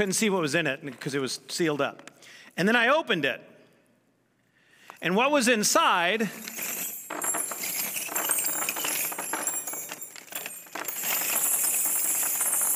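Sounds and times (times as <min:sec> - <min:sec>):
speech: 0:00.0 - 0:03.5, 0:05.0 - 0:06.8
over 100 old church keys jingling in a heavy bag: 0:06.2 - 0:12.7.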